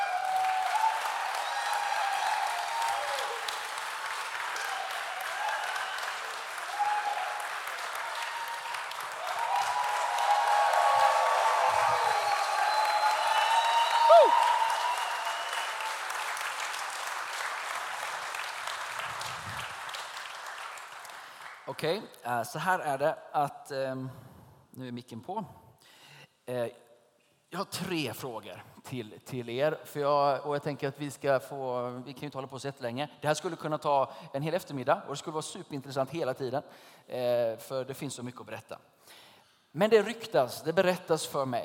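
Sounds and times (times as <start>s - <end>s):
audience applause: 0.0s - 21.7s
speech: 21.8s - 25.6s, 26.5s - 26.8s, 27.5s - 41.6s.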